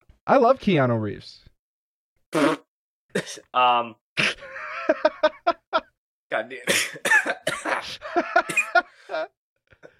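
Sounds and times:
speech: 0:00.3 - 0:01.5, 0:02.3 - 0:05.3, 0:06.3 - 0:09.4
person coughing: 0:03.1 - 0:03.5, 0:06.6 - 0:09.9
laughter: 0:04.4 - 0:05.9, 0:07.6 - 0:09.3.

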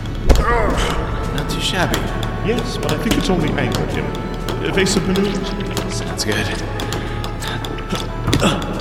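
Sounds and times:
thrown dodgeball hitting its target: 0:00.2 - 0:02.5
speech: 0:01.7 - 0:06.8, 0:07.9 - 0:08.7.

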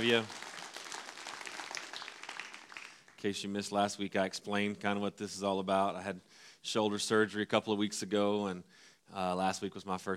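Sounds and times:
speech: 0:00.0 - 0:00.4, 0:03.2 - 0:10.1
audience applauding for first-time guests: 0:00.0 - 0:03.2.

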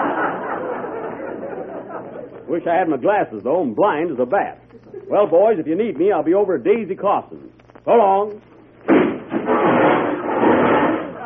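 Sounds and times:
laughter: 0:00.0 - 0:02.6, 0:04.8 - 0:05.3, 0:11.0 - 0:11.2
speech: 0:02.5 - 0:09.7
crash of splintering wood as a person crashes through a wooden wall: 0:08.9 - 0:11.2.

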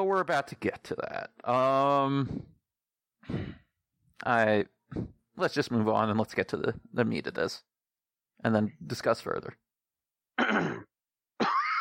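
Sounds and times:
speech: 0:00.0 - 0:02.6, 0:03.2 - 0:03.6, 0:04.2 - 0:07.7, 0:08.4 - 0:09.6, 0:10.4 - 0:10.9
person clearing throat: 0:10.4 - 0:11.8.

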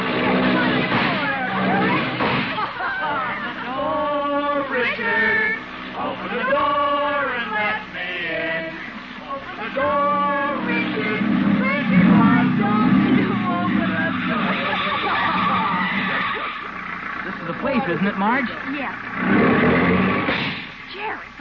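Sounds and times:
hopped-up jalopy hot rod engine revving: 0:00.0 - 0:21.2
laughter: 0:01.6 - 0:06.6, 0:13.3 - 0:18.4.

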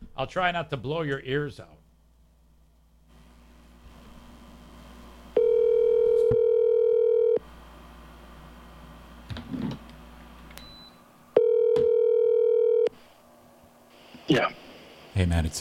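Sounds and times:
speech: 0:00.2 - 0:01.8, 0:14.3 - 0:14.6, 0:15.2 - 0:15.5
telephone ring tones over a speakerphone: 0:05.4 - 0:07.4, 0:11.4 - 0:12.9.

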